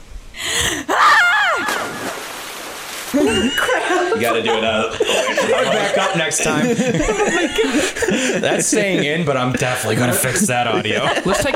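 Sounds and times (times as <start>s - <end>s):
woman inhaling sharply: 0.4s - 0.9s
woman screaming loudly: 0.9s - 2.1s
laughter: 3.2s - 11.5s
speech: 3.2s - 11.5s.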